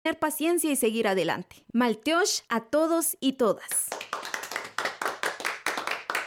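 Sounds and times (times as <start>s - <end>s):
speech: 0.1s - 4.1s
audience applause at a community gathering: 3.9s - 6.2s.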